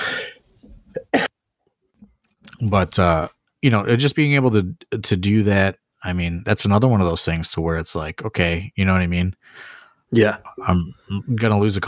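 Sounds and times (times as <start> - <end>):
man coughing harshly with raspy bursts: 1.0 - 1.3
speech: 2.6 - 11.8.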